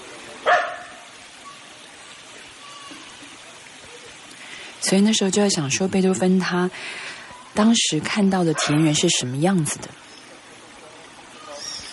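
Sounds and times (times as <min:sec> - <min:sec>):
dog barking by a countryside brook: 0:00.4 - 0:01.1, 0:08.5 - 0:08.8
speech: 0:04.8 - 0:10.2.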